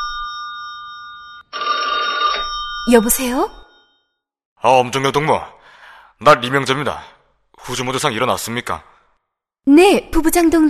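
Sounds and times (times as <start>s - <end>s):
telephone ringing with a steady electronic tone: 0.0s - 4.1s
speech: 2.8s - 3.6s, 4.6s - 5.6s, 6.2s - 8.9s, 9.6s - 10.6s.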